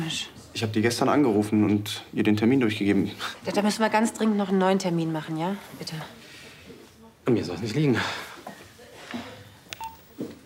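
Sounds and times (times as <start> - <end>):
speech: 0.1 - 6.2, 7.2 - 8.3
telephone dialing tones: 9.8 - 10.1.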